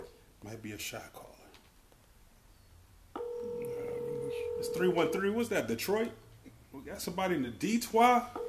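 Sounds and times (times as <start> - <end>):
speech: 0.4 - 1.3, 4.6 - 8.4
incoming telephone call electronic tone: 3.2 - 5.4.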